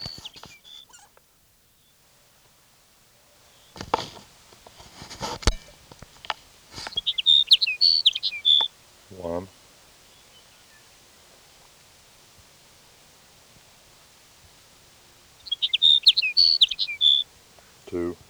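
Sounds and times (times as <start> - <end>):
sage sparrow song: 0.0 - 18.2
soft knocks and rustles: 3.7 - 7.0.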